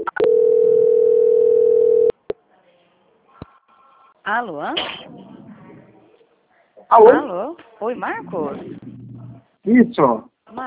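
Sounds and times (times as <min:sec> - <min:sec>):
steady single telephone tone during a call transfer: 0:00.0 - 0:02.2
speech: 0:04.3 - 0:05.3, 0:06.9 - 0:08.8, 0:09.6 - 0:10.6.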